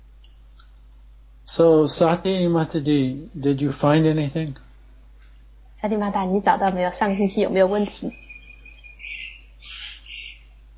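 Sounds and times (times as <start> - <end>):
steady low hum: 0.0 - 10.7
speech: 1.6 - 4.6, 5.8 - 8.2
tropical birds calling in the background of a call: 5.3 - 10.7.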